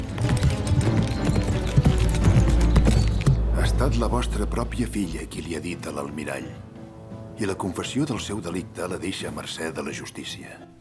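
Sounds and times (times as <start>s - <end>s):
hoofbeats of a horse galloping through a forest: 0.0s - 4.1s
speech: 3.8s - 6.7s, 7.4s - 10.7s.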